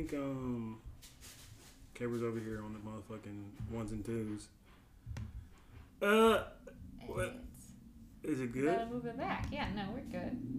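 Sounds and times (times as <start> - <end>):
speech: 0.0 - 1.4, 2.0 - 5.3, 6.0 - 7.5, 8.2 - 10.5
low noise: 0.0 - 10.5
person burping: 6.0 - 7.2.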